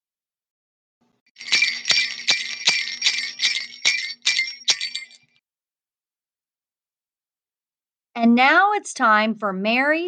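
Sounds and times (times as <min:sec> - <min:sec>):
drinks clinking together in a toast: 0:01.4 - 0:05.3
speech: 0:08.2 - 0:10.0.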